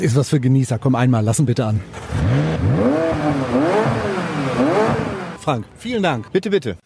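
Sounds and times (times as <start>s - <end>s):
speech: 0.0s - 4.0s, 5.5s - 6.8s
McLaren 570S Spider sports car engine revving: 1.8s - 5.6s.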